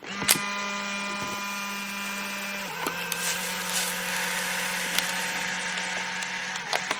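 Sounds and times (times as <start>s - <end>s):
instant camera motorized hum: 0.0s - 6.9s
instant camera shutter click: 1.9s - 6.8s.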